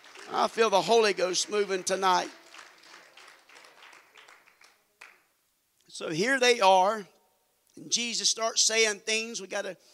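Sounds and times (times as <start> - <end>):
audience clapping hands in a steady rhythm: 0.0 - 5.4
speech: 0.3 - 2.4, 6.0 - 7.2, 7.8 - 9.9.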